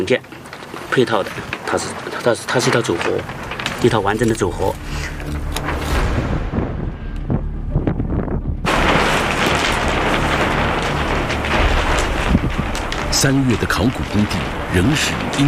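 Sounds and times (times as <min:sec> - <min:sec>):
speech: 0:00.0 - 0:00.4, 0:01.0 - 0:05.4, 0:13.2 - 0:15.4
strong gust of wind buffeting the microphone: 0:03.2 - 0:15.4.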